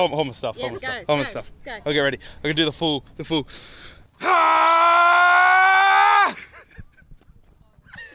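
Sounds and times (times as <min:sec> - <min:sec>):
speech: 0:00.0 - 0:05.2
person yelling like a cartoon hero powering up: 0:04.2 - 0:06.4.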